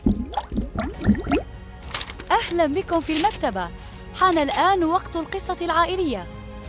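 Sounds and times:
bubbles blown under water: 0.0s - 1.4s
speech: 2.4s - 6.4s.

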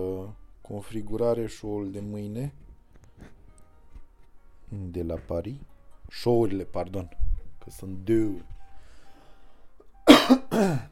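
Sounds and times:
speech: 0.0s - 2.6s, 4.7s - 8.6s, 10.6s - 10.8s
harsh coughs: 10.1s - 10.8s.

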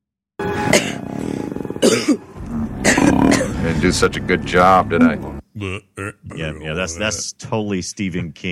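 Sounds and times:
voice imitating a man's normal cough: 0.7s - 1.0s, 1.8s - 2.2s, 2.8s - 3.6s
deep guttural pre-vomit retching groan: 0.7s - 3.8s, 5.6s - 6.5s
speech: 3.8s - 8.5s.

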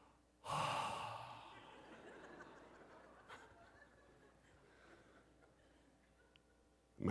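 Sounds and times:
person imitating annoying breathing out through the mouth: 0.0s - 1.7s
laughter: 1.6s - 6.6s.

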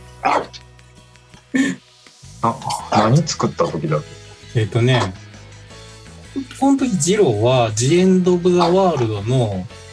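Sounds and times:
dog barking: 0.2s - 0.6s
speech: 2.4s - 5.2s, 6.4s - 9.8s.

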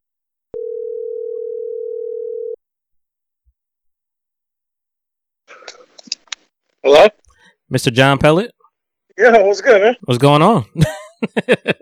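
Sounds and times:
ringback tone on an outgoing phone call: 0.6s - 2.6s
speech: 6.8s - 8.6s, 9.2s - 11.8s
laughter: 10.8s - 11.8s.

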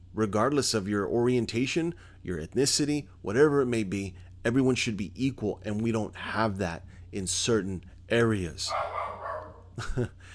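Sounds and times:
speech: 0.2s - 9.0s, 9.8s - 10.3s
dog barking: 8.7s - 9.8s.

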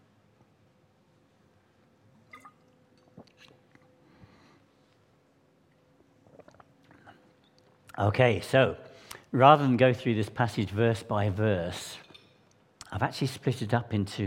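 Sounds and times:
low hum: 0.0s - 14.2s
person slurping a drink: 6.2s - 7.1s
wet sips and swallows: 6.2s - 7.6s
speech: 8.0s - 12.0s, 12.9s - 14.2s.

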